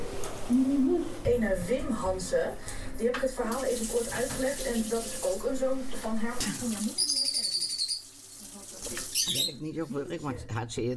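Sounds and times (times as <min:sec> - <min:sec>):
speech: 0:00.5 - 0:07.2, 0:09.3 - 0:10.9
pet bird chirping in high trilling notes: 0:07.0 - 0:08.1, 0:09.1 - 0:09.6.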